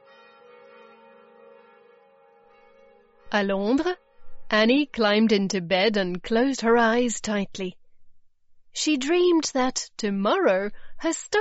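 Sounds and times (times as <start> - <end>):
church bells ringing in Madrid: 0.0 - 4.4
speech: 3.3 - 7.8, 8.8 - 11.3.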